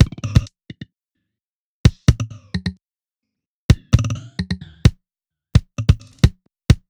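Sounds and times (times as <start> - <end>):
separated kick drum shuffle loop: 0.0 - 0.5, 1.9 - 2.2, 3.7 - 4.1, 5.6 - 6.8.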